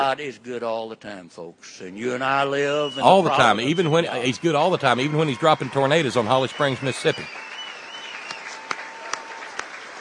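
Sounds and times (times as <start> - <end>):
speech: 0.0 - 7.5
audience applause at a political campaign event: 3.0 - 9.9.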